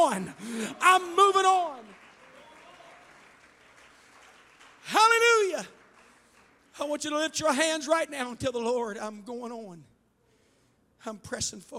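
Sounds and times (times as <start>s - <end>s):
large audience clapping: 0.0s - 7.1s
speech: 0.2s - 1.9s, 6.8s - 9.9s, 11.0s - 11.7s.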